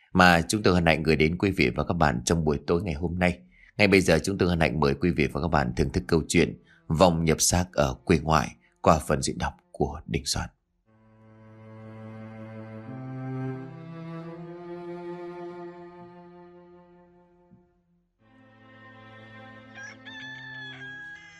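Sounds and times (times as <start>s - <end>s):
speech: 0.1s - 10.6s
rooster crowing at the edge of a village: 19.2s - 21.3s.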